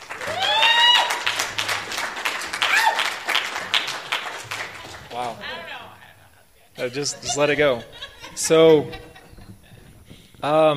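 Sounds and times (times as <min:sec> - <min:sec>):
audience applauding a speaker: 0:00.0 - 0:06.0
whoops and cheers: 0:00.1 - 0:01.6, 0:02.5 - 0:03.2
laughter: 0:04.4 - 0:06.1, 0:06.8 - 0:10.1
speech: 0:06.8 - 0:09.1, 0:10.4 - 0:10.7.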